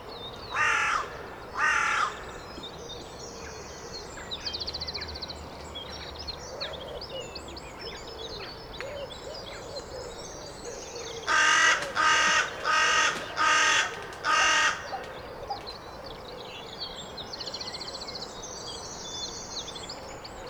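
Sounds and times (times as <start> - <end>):
faint background birdsong: 0.0 - 20.4
carrion crow Corvus corone giving loud harsh even caws: 0.5 - 2.2, 11.3 - 15.1.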